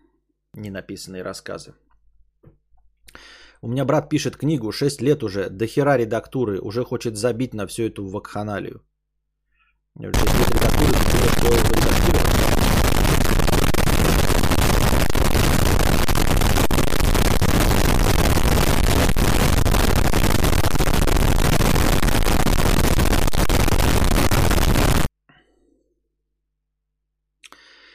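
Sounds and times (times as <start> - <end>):
speech: 0.6 - 1.9, 3.6 - 8.9, 10.0 - 12.6
fireworks launched by villages at night crackling and bursting: 10.2 - 25.1.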